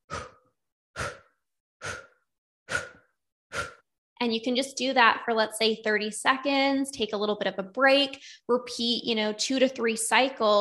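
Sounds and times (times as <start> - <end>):
forceful exhales through the mouth in a breathing exercise: 0.0 - 3.8
speech: 4.2 - 10.5.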